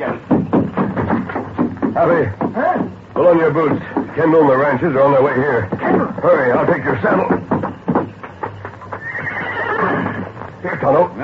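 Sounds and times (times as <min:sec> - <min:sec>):
soft hoof clops: 0:00.0 - 0:11.2
speech: 0:02.0 - 0:07.6, 0:10.6 - 0:11.2
grazing bronc neighing in a long shrill whinny: 0:08.9 - 0:10.5.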